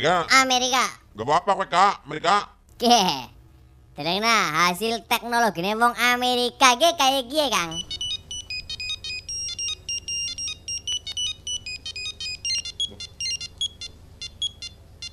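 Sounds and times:
speech: 0:00.0 - 0:03.4, 0:04.0 - 0:08.0
faint low hum: 0:00.0 - 0:15.1
mobile phone ringtone: 0:07.6 - 0:15.1.

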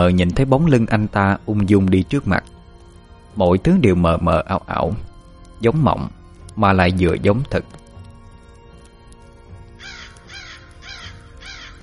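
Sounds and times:
speech: 0:00.0 - 0:02.5, 0:03.4 - 0:07.8
crow cawing at night: 0:09.8 - 0:11.8.

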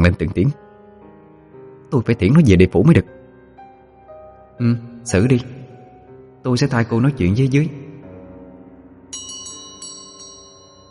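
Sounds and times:
speech: 0:00.0 - 0:00.7, 0:01.9 - 0:03.2, 0:04.6 - 0:05.6, 0:06.4 - 0:07.9
small bronze bell jingling: 0:09.1 - 0:10.8.

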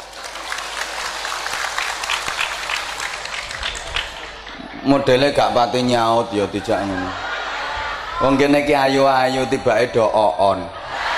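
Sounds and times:
audience applause after a speech: 0:00.0 - 0:04.8
laughter: 0:03.1 - 0:09.6
speech: 0:04.8 - 0:07.3, 0:08.2 - 0:10.8.

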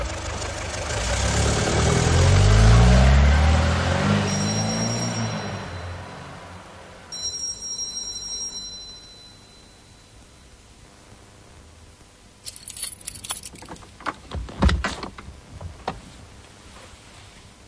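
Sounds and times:
taxi engine pulling away: 0:00.0 - 0:07.1.

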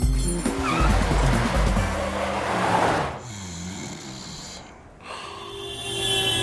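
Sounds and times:
car engine and tires on a highway: 0:00.3 - 0:03.5.

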